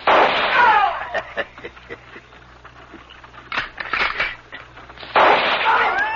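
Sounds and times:
carbine gunshots: 0.0 - 1.0, 5.0 - 6.0
laughter: 0.9 - 2.5.

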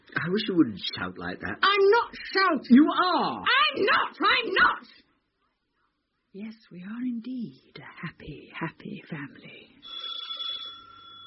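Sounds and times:
speech: 0.2 - 5.0, 6.3 - 10.1
faint high-pitched household bell ringing: 9.8 - 11.2.

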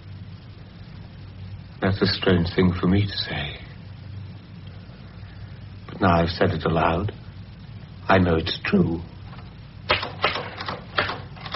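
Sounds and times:
speech: 1.8 - 3.7, 6.0 - 7.2, 8.1 - 9.1
typewriter typing: 9.9 - 11.5.

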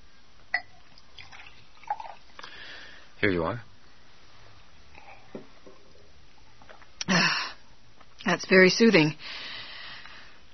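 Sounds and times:
water poured from a carafe into a glass: 0.6 - 2.5
speech: 3.2 - 3.7, 8.3 - 9.4.

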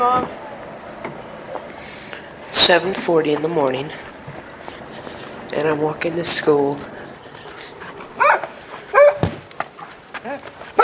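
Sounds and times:
speech: 0.0 - 0.4, 2.5 - 4.1, 5.5 - 6.9
dog barking excitedly: 8.2 - 10.8
thump: 9.2 - 9.5.

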